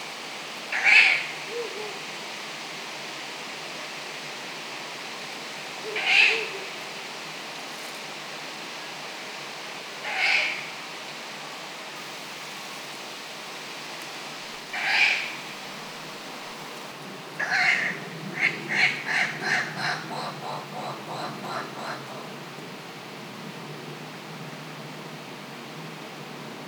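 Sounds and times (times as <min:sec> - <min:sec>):
Ural owl calling: 0:00.7 - 0:02.0, 0:05.8 - 0:06.8, 0:10.0 - 0:10.8, 0:14.7 - 0:15.5, 0:17.4 - 0:22.4.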